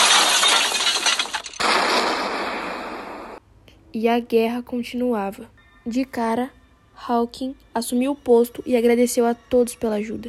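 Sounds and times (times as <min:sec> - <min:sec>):
crackling shattering debris: 0:00.0 - 0:03.4
loud dense explosions: 0:01.6 - 0:03.4
sharp blast: 0:01.6 - 0:03.4
speech: 0:03.9 - 0:10.2.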